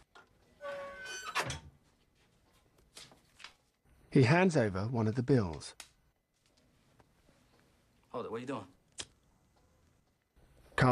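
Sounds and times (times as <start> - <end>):
heavy safe door hinge creak: 0.6 - 1.7
speech: 4.2 - 5.9, 8.2 - 8.8.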